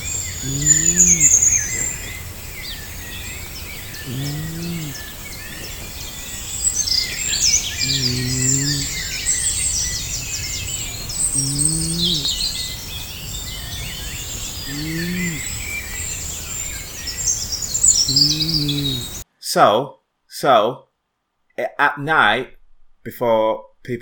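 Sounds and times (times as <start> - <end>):
morning birdsong chorus at a campsite: 0.0 - 19.2
person snoring in a tent: 0.4 - 1.8, 4.0 - 5.6, 7.8 - 9.0, 11.3 - 12.4, 14.7 - 15.6, 18.1 - 19.2
speech: 0.4 - 2.3, 4.1 - 4.8, 19.6 - 20.9, 21.6 - 24.0.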